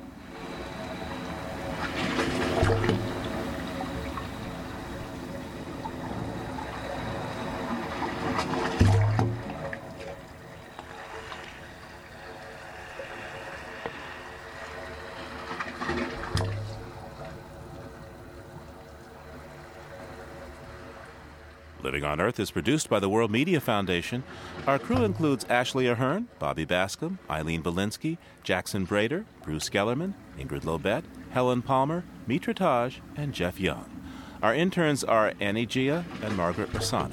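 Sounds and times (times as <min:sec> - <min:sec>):
waves surging through pipes of an acoustic sculpture in San Francisco Bay: 0:00.0 - 0:21.8, 0:32.0 - 0:37.1
speech: 0:21.9 - 0:37.1.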